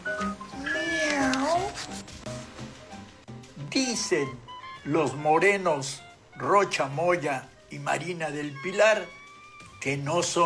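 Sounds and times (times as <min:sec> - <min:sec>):
cat meowing: 0:00.0 - 0:02.1, 0:03.6 - 0:10.4
speech: 0:03.9 - 0:09.2, 0:09.8 - 0:10.4.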